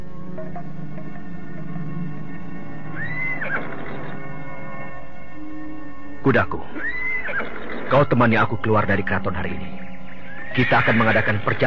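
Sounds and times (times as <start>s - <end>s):
speech: 6.2s - 9.8s, 10.5s - 11.6s
horse neighing: 6.7s - 7.8s, 10.3s - 11.6s.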